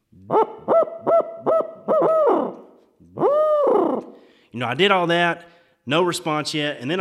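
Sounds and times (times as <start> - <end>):
owl hoot blown on a hoot stick: 0.2 - 4.2
speech: 0.3 - 0.8, 4.6 - 6.9.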